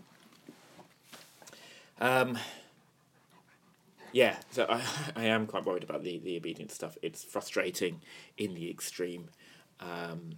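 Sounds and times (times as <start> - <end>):
speech: 2.0 - 2.6, 4.1 - 10.3
dog panting while playing: 2.7 - 4.4.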